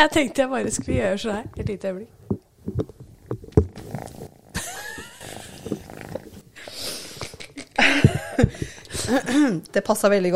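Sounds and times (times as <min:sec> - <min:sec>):
speech: 0:00.0 - 0:03.0, 0:08.4 - 0:10.3
cat purring close to the microphone: 0:00.6 - 0:07.3
cat's breathy snuffles: 0:05.2 - 0:07.4.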